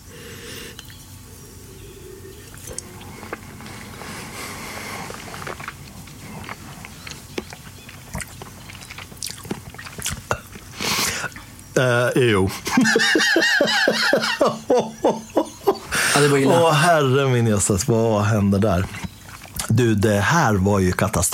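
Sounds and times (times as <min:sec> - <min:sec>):
slurping wine during tasting: 0:01.6 - 0:14.8, 0:15.8 - 0:21.3
speech: 0:11.8 - 0:15.3, 0:16.2 - 0:19.1, 0:19.8 - 0:21.3
laughter: 0:12.4 - 0:17.2.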